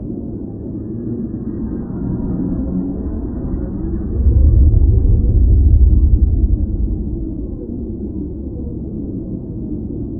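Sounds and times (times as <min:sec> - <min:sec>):
alien machinery: 0:02.2 - 0:09.6.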